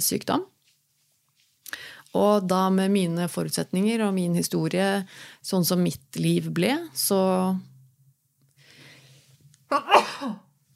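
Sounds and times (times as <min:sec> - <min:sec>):
speech: 0:00.0 - 0:00.6, 0:02.1 - 0:07.7, 0:09.7 - 0:10.4
person sneezing: 0:09.7 - 0:10.5.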